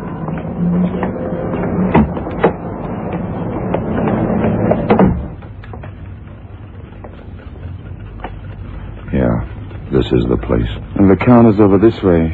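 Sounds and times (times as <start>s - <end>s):
watchmaker's shop door opening and closing: 0.0s - 5.6s
steady low hum: 0.0s - 12.3s
speech: 10.1s - 12.3s.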